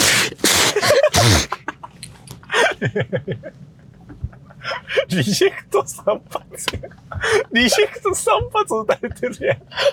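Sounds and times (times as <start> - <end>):
loud sneeze: 0.0 - 1.6
speech: 2.8 - 9.9.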